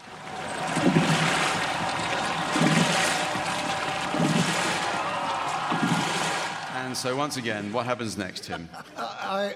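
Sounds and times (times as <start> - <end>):
oars of racing rowing boats splashing through river water: 0.0 - 6.8
rushing river water with a constant wash of spray: 0.0 - 7.0
speech: 6.9 - 9.5
laughter: 8.1 - 9.5.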